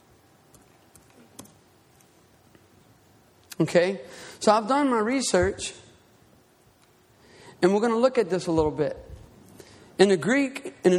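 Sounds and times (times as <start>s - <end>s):
password typed on a computer keyboard: 0.5s - 2.1s
speech: 3.6s - 5.8s, 7.6s - 9.0s, 10.0s - 10.9s.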